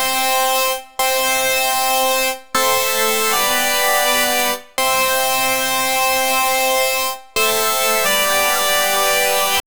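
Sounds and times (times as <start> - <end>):
K-pop lead melody: 0.0 - 9.6.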